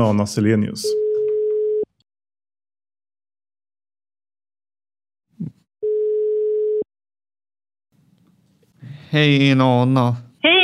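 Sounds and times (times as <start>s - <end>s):
speech: 0.0s - 1.1s, 9.1s - 10.6s
telephone ringback tone while placing a call: 0.9s - 1.9s, 5.8s - 6.8s.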